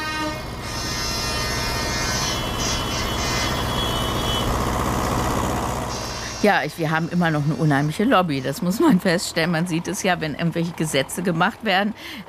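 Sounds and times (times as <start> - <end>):
horns honking at a farmers' protest: 0.0 - 5.2, 5.9 - 9.2
diesel engines rumbling and idling at a farmers' protest: 0.0 - 12.2
speech: 6.4 - 12.2.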